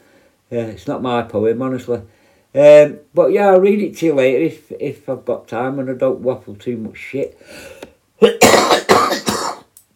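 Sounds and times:
speech: 0.5 - 9.3
harsh raspy coughing: 8.2 - 9.7.

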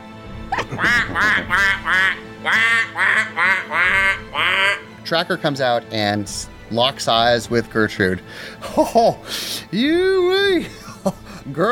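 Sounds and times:
laughter: 0.5 - 4.9, 8.6 - 9.3, 10.6 - 11.5
duck call blown in nasal raspy quacks: 0.7 - 4.9
speech: 0.7 - 11.7.

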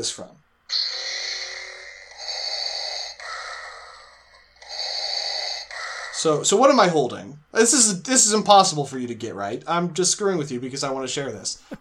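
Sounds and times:
speech: 0.0 - 1.0, 6.2 - 11.8
mechanical respirator breathing effect from a toy: 0.7 - 6.4.

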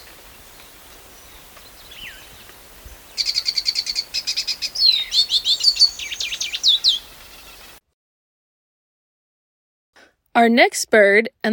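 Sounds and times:
Lesser Goldfinch song with call notes: 0.0 - 7.8
speech: 10.4 - 11.5.

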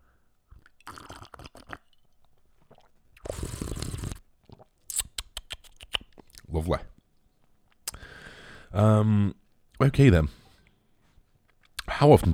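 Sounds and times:
slurping sip of Monster energy drink from a cup: 0.8 - 2.0, 2.6 - 6.3
speech: 6.5 - 6.9, 8.7 - 10.4, 12.0 - 12.3.

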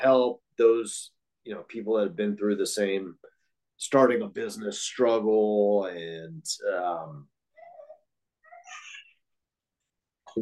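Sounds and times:
speech: 0.0 - 7.3
seven-month-old baby cooing: 7.6 - 9.2.

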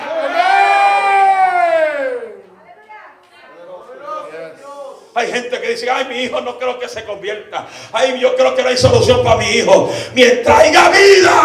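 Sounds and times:
audience shouting amen at a preacher's call during a sermon: 0.0 - 2.5
speech: 5.2 - 11.4.

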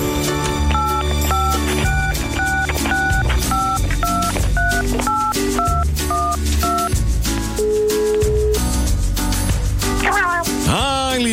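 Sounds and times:
busy music: 0.0 - 11.3
phone number dialed with touch-tone beeps: 0.7 - 7.0.

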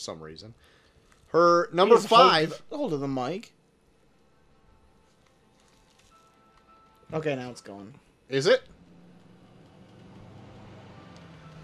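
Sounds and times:
speech: 0.0 - 3.6, 7.1 - 8.8
heavy truck passing outside: 8.7 - 11.6.

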